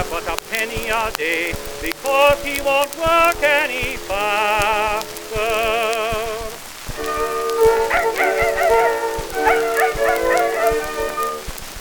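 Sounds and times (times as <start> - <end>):
speech: 0.9 - 6.0
several dogs barking and yelping: 7.0 - 11.6.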